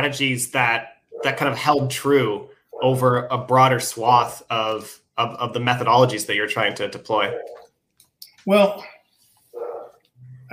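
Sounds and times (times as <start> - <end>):
speech: 0.0 - 7.6, 8.4 - 8.9
dog bark: 7.3 - 7.6, 9.6 - 10.0.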